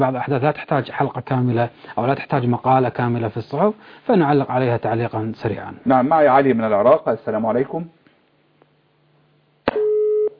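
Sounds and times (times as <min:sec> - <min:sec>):
speech: 0:00.0 - 0:08.0
telephone busy tone beep after a dropped call: 0:09.8 - 0:10.3.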